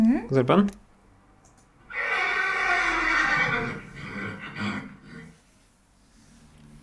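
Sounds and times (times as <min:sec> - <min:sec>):
speech: 0:00.1 - 0:00.8
horse whinnying: 0:01.9 - 0:05.4.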